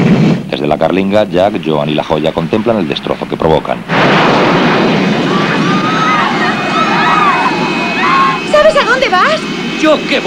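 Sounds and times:
jet turbine blast roaring: 0.0 - 10.2
speech: 0.9 - 4.0, 9.0 - 10.2
sharp crashes: 3.8 - 8.5
crowd shouting and screaming: 4.9 - 9.4.

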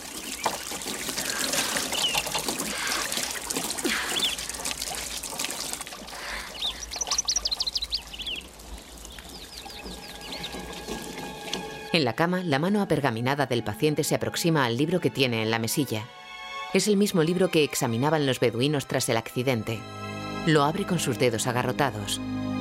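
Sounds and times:
water trickling and splashing from a broken garden tap: 0.0 - 12.0
birds chirping: 0.0 - 12.2
speech: 12.0 - 22.5.

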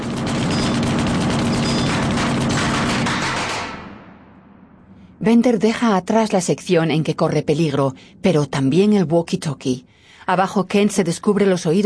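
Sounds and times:
submachine gun firing by an armed robber: 0.0 - 4.2
speech: 5.2 - 11.8.

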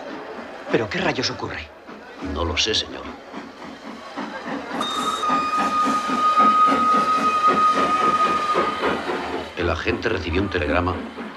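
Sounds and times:
train chugging into a station: 0.0 - 11.3
speech: 0.7 - 3.4, 9.6 - 11.3
long high train whistle: 4.8 - 9.4.

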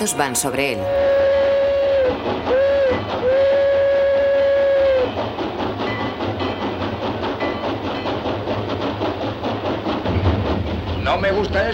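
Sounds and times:
speech: 0.0 - 1.3, 2.1 - 2.4, 11.1 - 11.7
locomotive whistle blasts: 0.0 - 5.2
locomotive chugging and rattling as it pushes a wagon loaded with railway building material: 0.0 - 11.7.

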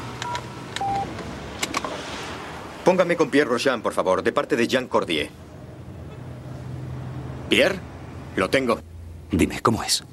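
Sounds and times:
telephone keypad beeps while dialing in a car: 0.2 - 1.1
speech: 2.9 - 5.4, 7.5 - 10.1.

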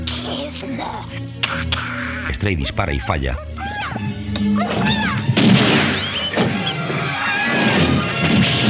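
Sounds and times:
speech: 0.5 - 5.2
ceiling window blinds yanked open with a crash: 5.3 - 8.6.

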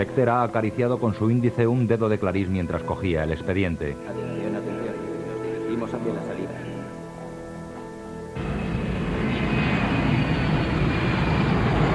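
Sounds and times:
speech: 0.0 - 4.3
airplane taking off at night: 4.1 - 11.9.

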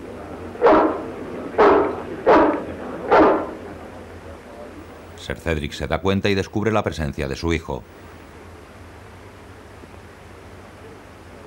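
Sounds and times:
dog barking: 0.6 - 3.6
speech: 5.2 - 8.1.

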